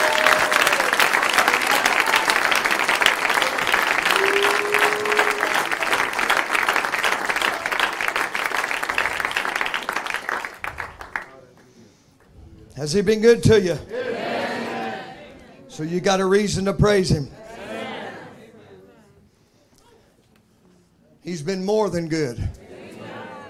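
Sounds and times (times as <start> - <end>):
congregation clapping hands in praise at a church service: 0.0 - 12.3
speech: 12.8 - 14.0, 15.8 - 17.4, 21.5 - 22.6.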